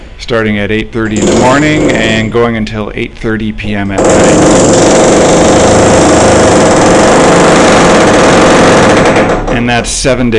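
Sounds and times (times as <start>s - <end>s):
speech: 0.3s - 7.3s, 9.2s - 10.3s
power drill drilling in upstairs apartment: 1.2s - 2.1s, 4.0s - 9.5s.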